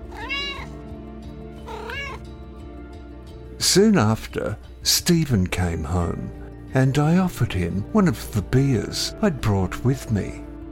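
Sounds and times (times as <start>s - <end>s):
cat meowing: 0.0s - 0.8s, 1.6s - 2.3s
speech: 3.7s - 10.5s.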